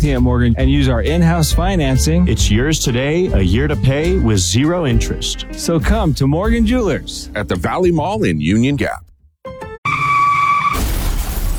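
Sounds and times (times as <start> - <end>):
speech: 0.0 - 9.1
car tires screeching: 9.9 - 10.8
car crash impact with scattering debris: 10.2 - 11.5.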